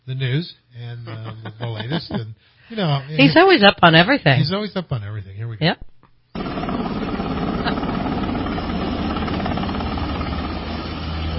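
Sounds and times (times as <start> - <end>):
speech: 0.1 - 7.0
laughter: 1.0 - 3.3
Black Hawk helicopter rotor and engine roar: 6.4 - 11.3.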